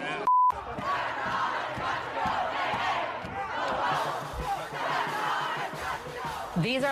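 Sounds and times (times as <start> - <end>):
large crowd of protesters shouting and chanting outdoors at courthouse doors: 0.0 - 6.9
speech: 6.6 - 6.9.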